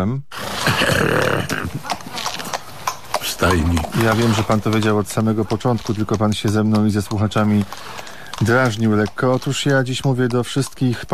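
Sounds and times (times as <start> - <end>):
speech: 0.0 - 1.6, 3.4 - 11.1
person mouthing a whinny-like horse neigh: 0.4 - 2.3
mouth clicking sounds imitating hoofbeats: 0.4 - 11.1.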